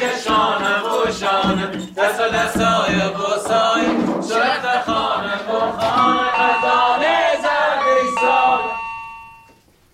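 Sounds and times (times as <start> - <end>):
speech: 1.1 - 6.8
electronic chime from a door intercom: 5.8 - 9.7.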